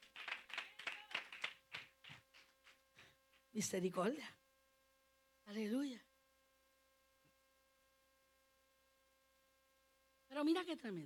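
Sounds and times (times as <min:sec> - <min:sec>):
group rhythmic hand clapping: 0:00.0 - 0:03.4
speech: 0:03.6 - 0:04.4, 0:05.5 - 0:06.1, 0:10.4 - 0:11.0.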